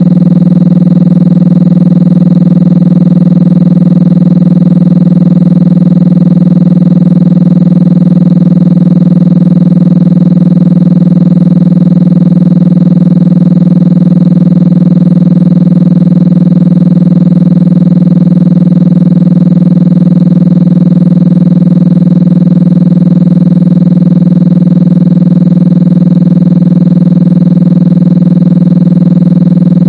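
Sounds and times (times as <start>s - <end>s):
20 Hz tone: 0.0s - 29.8s.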